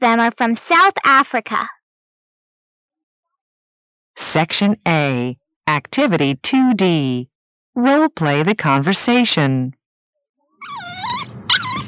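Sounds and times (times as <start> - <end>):
speech: 0.0 - 1.8, 4.2 - 9.8
pet dog whimpering in high wavering whines: 10.6 - 11.8.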